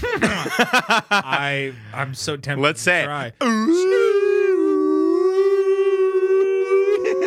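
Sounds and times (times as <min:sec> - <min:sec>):
laughter: 0:00.0 - 0:01.4
speech: 0:00.0 - 0:04.2
person imitating a whale call with a moaning vocal tone: 0:03.4 - 0:07.2.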